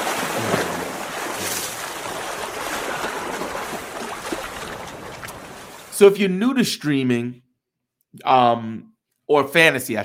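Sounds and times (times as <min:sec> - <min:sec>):
rushing river water: 0:00.0 - 0:05.9
speech: 0:06.0 - 0:07.4, 0:08.2 - 0:10.0.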